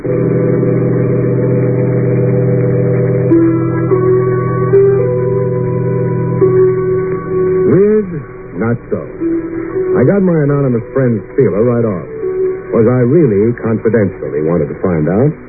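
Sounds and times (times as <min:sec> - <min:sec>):
bus engine revving and shifting gears as it pulls away: 0:00.0 - 0:11.0
speech: 0:10.0 - 0:12.2, 0:12.8 - 0:15.4.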